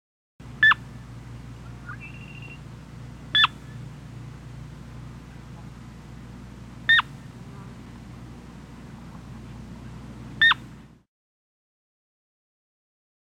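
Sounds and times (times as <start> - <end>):
low background hum: 0.4 - 11.1
Sora giving short sharp keek calls: 0.6 - 2.7, 3.3 - 3.9, 6.9 - 7.3, 10.4 - 10.7
faint whistle: 1.8 - 2.6.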